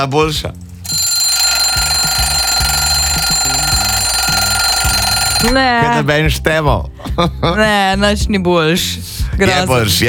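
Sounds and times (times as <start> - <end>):
speech: 0.0 - 1.1, 5.4 - 10.0
alarm clock ringing with electronic melodic tones: 0.8 - 5.8.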